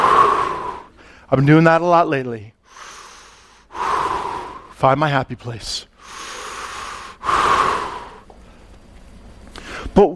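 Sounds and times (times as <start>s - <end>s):
person breathing in deeply: 0.0s - 1.3s, 2.6s - 4.8s, 6.0s - 8.6s, 9.6s - 10.0s
speech: 1.3s - 2.9s, 4.8s - 6.2s, 10.0s - 10.1s.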